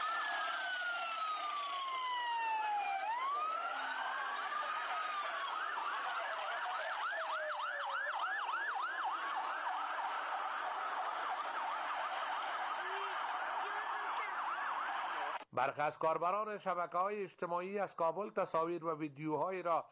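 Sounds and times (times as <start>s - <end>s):
busy street hum: 0.0s - 15.4s
several ambulance sirens wailing and overlapping: 0.0s - 15.4s
speech: 15.6s - 19.9s.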